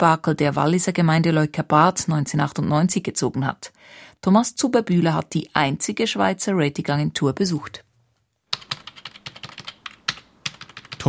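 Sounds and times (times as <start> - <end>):
speech: 0.0 - 7.9
typing figures into a spreadsheet on a computer keyboard in an office: 8.5 - 11.0.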